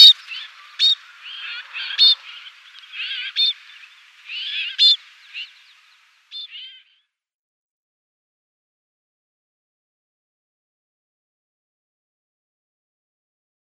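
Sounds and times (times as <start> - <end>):
snowfinch giving varied nasal wavering calls and sharp short notes: 0.0 - 5.7.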